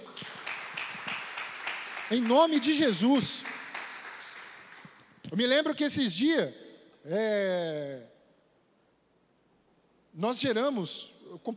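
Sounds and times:
group of people clapping at a religious gathering: 0.0 - 5.2
speech: 2.1 - 3.6, 5.3 - 8.1, 10.2 - 11.5.

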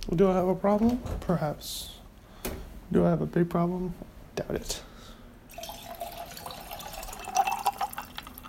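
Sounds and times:
speech: 0.1 - 1.9, 2.9 - 4.9
Coca-Cola being poured into a glass: 5.5 - 8.4.

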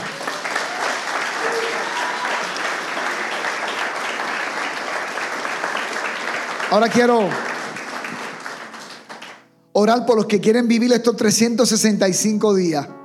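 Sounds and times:
audience clapping: 0.0 - 9.5
speech: 6.7 - 7.5, 9.8 - 13.0.

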